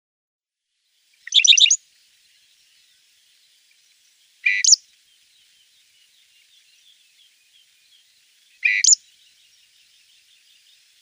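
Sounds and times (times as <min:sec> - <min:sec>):
Southern Grey Shrike song: 0:01.2 - 0:01.8, 0:03.9 - 0:11.0.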